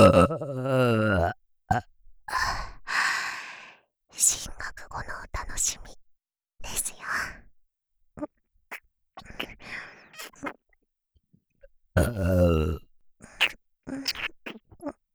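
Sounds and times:
loud drawn-out burp: 0:00.0 - 0:01.9, 0:12.0 - 0:12.8
speech: 0:00.0 - 0:01.9, 0:04.2 - 0:06.0, 0:06.6 - 0:07.5, 0:12.0 - 0:12.8, 0:13.4 - 0:14.3
soft breathy vocal sounds: 0:00.0 - 0:03.5, 0:12.0 - 0:14.1.

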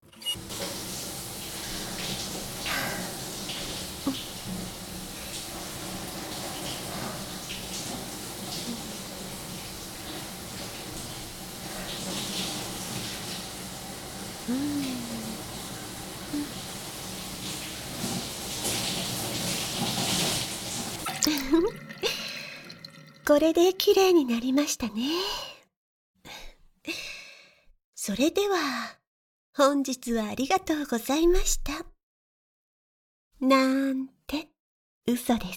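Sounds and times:
water running while rinsing someone off after washing: 0:00.4 - 0:24.5
speech: 0:23.3 - 0:25.4, 0:28.1 - 0:29.0, 0:29.6 - 0:31.9, 0:33.4 - 0:34.5, 0:35.1 - 0:35.5.

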